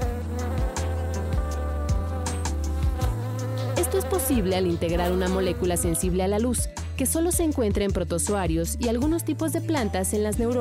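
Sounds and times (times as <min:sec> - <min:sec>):
fly wings buzzing under light-pulse control: 0:00.0 - 0:06.4
speech: 0:04.1 - 0:10.6.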